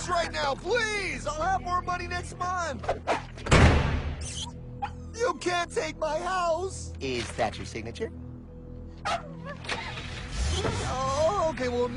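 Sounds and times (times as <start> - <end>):
speech: 0.1 - 3.6, 5.2 - 8.2, 9.0 - 9.9, 10.6 - 11.9
dog barking: 9.0 - 9.7.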